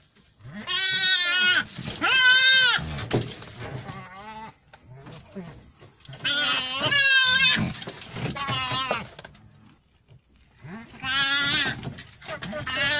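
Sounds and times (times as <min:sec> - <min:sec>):
nutria giving loud harmonic bleating cries: 0:00.4 - 0:02.9, 0:06.2 - 0:07.7, 0:08.3 - 0:09.1, 0:10.7 - 0:12.9.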